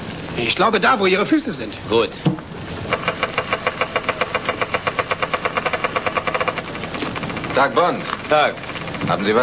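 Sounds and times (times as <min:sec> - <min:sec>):
speech: 0:00.4 - 0:02.5, 0:07.6 - 0:09.4
Geiger counter clicking: 0:02.9 - 0:09.4.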